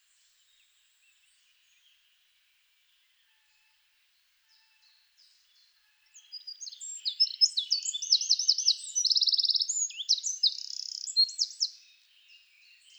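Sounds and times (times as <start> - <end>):
Eurasian wren song: 6.5 - 11.7.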